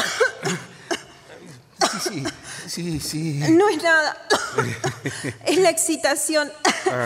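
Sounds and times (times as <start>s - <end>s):
woman coughing: 0.0s - 2.5s, 3.5s - 5.6s, 6.6s - 7.0s
speech: 2.0s - 7.0s.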